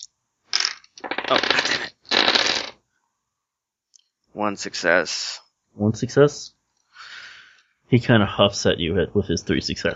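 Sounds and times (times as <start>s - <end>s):
dice tumbling across a hard surface: 0.0s - 2.8s
speech: 1.3s - 2.0s, 4.4s - 6.6s, 7.9s - 9.9s.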